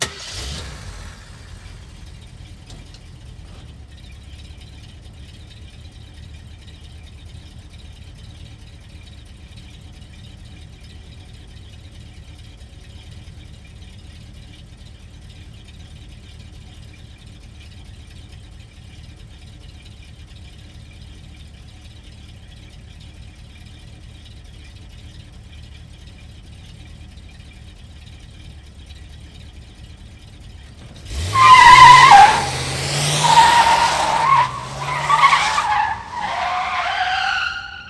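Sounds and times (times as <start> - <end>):
car fishtailing out: 0.0 - 3.8, 30.7 - 37.8
car engine starting: 0.0 - 37.8.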